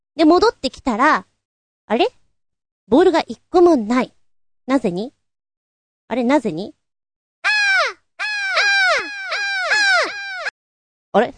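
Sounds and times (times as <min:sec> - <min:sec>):
speech: 0:00.2 - 0:01.3, 0:01.9 - 0:02.2, 0:02.9 - 0:05.2, 0:06.1 - 0:06.8, 0:11.1 - 0:11.3
crows cawing: 0:07.4 - 0:10.5.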